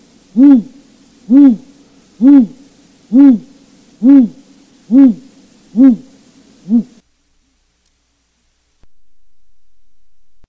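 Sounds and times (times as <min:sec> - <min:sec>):
owl hoots in broadcast recording for a northern owl survey: 0:00.0 - 0:07.0.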